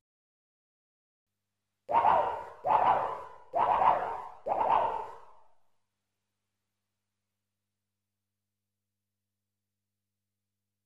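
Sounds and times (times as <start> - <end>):
electronic laser sword sounds: 1.9 - 5.2.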